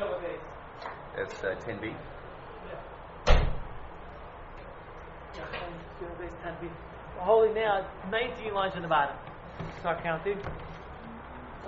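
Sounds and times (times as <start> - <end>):
speech: 1.3 - 2.2, 5.4 - 10.7
door shutting: 3.2 - 3.8.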